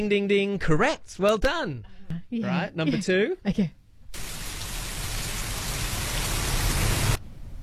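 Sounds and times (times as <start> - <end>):
speech: 0.0 - 3.8
rain falling: 4.1 - 7.2.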